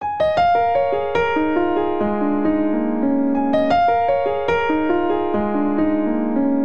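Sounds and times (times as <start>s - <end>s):
cinematic descending grand piano phrase: 0.0s - 6.6s.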